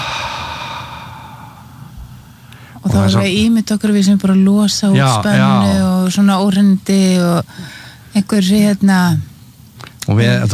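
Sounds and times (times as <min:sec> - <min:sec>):
deep drawn-out exhale during a guided breathing exercise: 0:00.0 - 0:02.8
speech: 0:02.9 - 0:09.3, 0:10.1 - 0:10.5.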